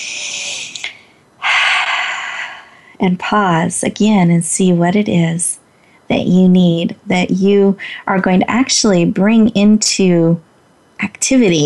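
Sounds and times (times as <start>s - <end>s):
deep breathing: 0.0s - 3.0s
speech: 3.0s - 11.6s.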